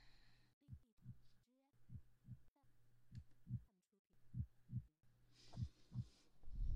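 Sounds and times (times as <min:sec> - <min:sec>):
heartbeat thumping as if through a stethoscope: 0:00.6 - 0:01.3, 0:01.9 - 0:02.5, 0:03.1 - 0:03.7, 0:04.3 - 0:06.7.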